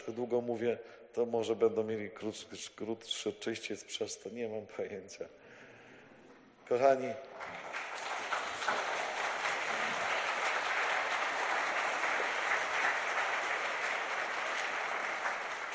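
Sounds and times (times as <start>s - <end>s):
speech: 0.0s - 5.4s, 6.7s - 7.7s
large audience applauding: 7.4s - 15.7s.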